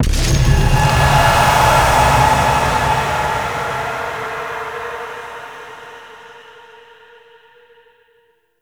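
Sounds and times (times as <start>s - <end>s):
hex appear game sound effect: 0.0s - 6.7s.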